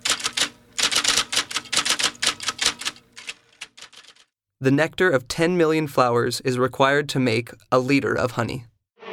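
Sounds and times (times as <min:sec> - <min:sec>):
old mechanical typewriter typing: 0:00.0 - 0:04.3
speech: 0:04.6 - 0:08.7.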